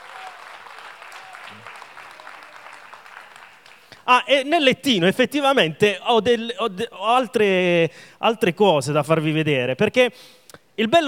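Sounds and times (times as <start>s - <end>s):
audience applauding at a church gathering: 0.0s - 4.1s
speech: 1.5s - 1.8s, 4.1s - 11.0s.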